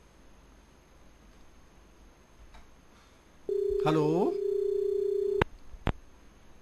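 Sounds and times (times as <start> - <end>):
telephone busy tone after a call drops: 3.5 - 5.4
speech: 3.8 - 4.4.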